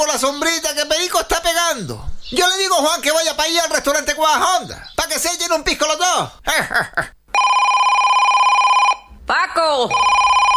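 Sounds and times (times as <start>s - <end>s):
speech: 0.0s - 7.2s, 9.3s - 10.4s
telephone bell ringing in a rapid trill: 7.3s - 9.1s, 9.9s - 10.5s.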